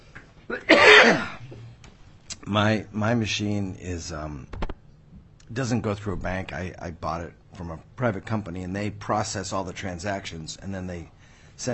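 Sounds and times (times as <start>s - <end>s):
speech: 0.5s - 1.3s, 2.6s - 4.6s, 5.5s - 11.7s
harsh forceful cough: 0.5s - 1.4s.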